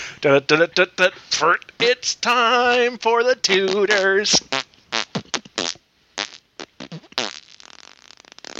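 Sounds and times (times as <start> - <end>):
speech: 0.2 - 4.6
wet buzzy raspberry fart noises blown with the mouth: 3.6 - 8.5.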